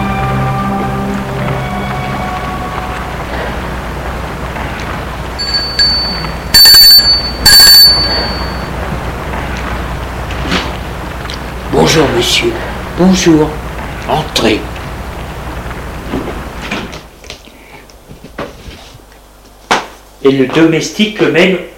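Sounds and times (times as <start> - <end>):
hissing noise: 0.0 - 21.7
chime tones: 5.4 - 8.8
doorbell ringing: 5.4 - 8.8
speech: 12.0 - 14.7, 20.2 - 21.7.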